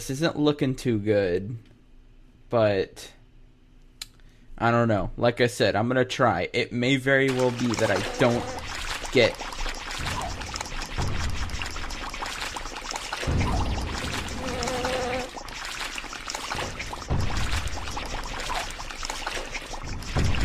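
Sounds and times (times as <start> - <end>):
speech: 0.0 - 1.7, 2.5 - 3.2, 4.6 - 9.5
geyser water gushing: 7.3 - 20.4.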